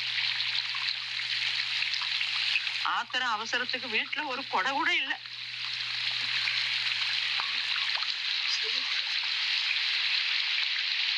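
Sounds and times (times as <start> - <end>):
rain leaking through the roof of a house: 0.0 - 11.1
speech: 2.9 - 5.3.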